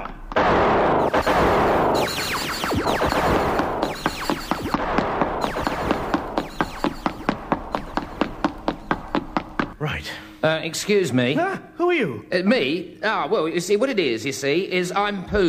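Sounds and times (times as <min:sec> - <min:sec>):
gunfire: 0:00.0 - 0:09.8
speech: 0:10.4 - 0:15.4.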